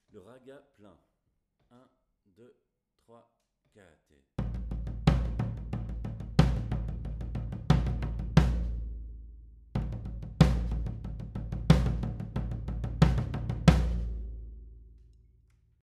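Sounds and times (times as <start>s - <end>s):
batucada percussion: 4.4s - 9.2s, 9.8s - 14.9s
ragga full bass: 4.5s - 9.0s, 9.8s - 14.6s.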